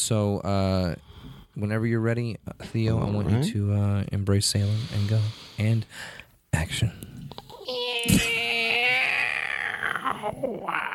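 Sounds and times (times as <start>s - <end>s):
speech: 0.0s - 7.1s, 7.7s - 8.4s, 10.1s - 10.9s
person imitating a cat with a long wavering meow: 7.7s - 10.9s.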